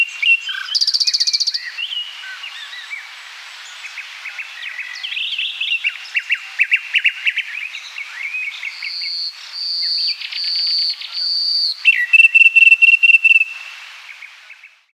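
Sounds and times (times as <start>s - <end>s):
Common nightingale song: 0.0s - 14.9s.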